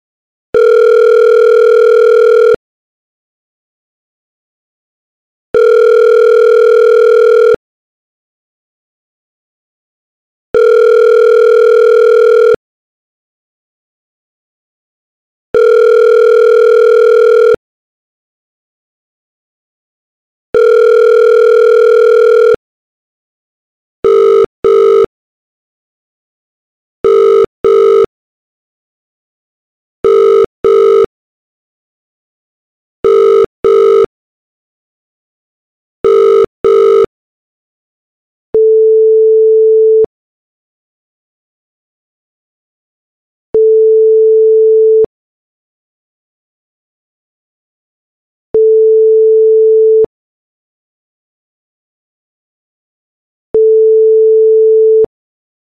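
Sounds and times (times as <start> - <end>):
phone ringback tone: 0.6 - 2.6, 5.6 - 7.6, 10.6 - 12.6, 15.6 - 17.6, 20.6 - 22.6, 24.0 - 25.1, 27.0 - 28.1, 30.0 - 31.1, 33.0 - 34.1, 36.0 - 37.1, 38.6 - 40.1, 43.6 - 45.1, 48.6 - 50.1, 53.6 - 55.1.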